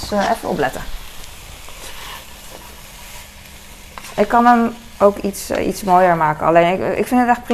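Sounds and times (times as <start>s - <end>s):
food sizzling in a frying pan: 0.0s - 7.5s
speech: 0.1s - 1.0s, 4.2s - 7.5s.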